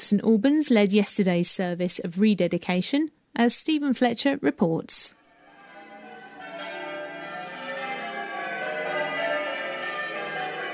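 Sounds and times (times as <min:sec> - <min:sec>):
speech: 0:00.0 - 0:05.2
church bells ringing in a dense overlapping peal: 0:05.3 - 0:10.7.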